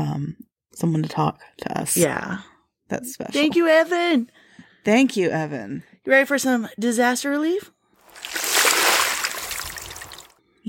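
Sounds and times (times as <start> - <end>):
speech: 0.0 - 8.5
water pouring out of a bucket: 8.0 - 10.4.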